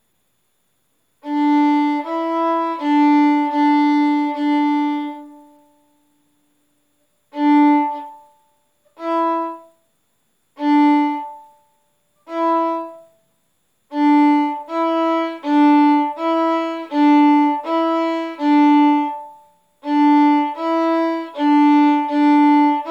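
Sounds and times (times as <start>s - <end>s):
violin played arco: 1.2s - 5.8s, 7.3s - 9.7s, 10.6s - 11.6s, 12.3s - 13.1s, 13.9s - 22.9s.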